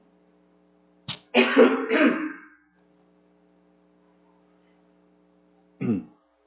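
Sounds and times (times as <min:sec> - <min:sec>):
person clearing throat: 0:01.4 - 0:02.5, 0:05.8 - 0:06.2.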